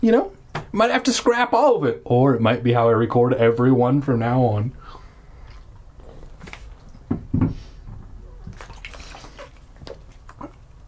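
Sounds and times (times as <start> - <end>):
speech: 0.0 - 5.0, 7.1 - 7.5
water sloshing in a bathtub as a person sits in it: 5.4 - 10.8.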